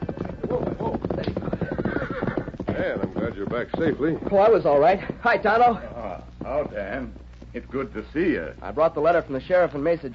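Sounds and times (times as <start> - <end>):
horse whinnying: 0.0 - 3.4
ridden horse hooves clip-clopping: 0.0 - 10.1
speech: 2.9 - 10.1.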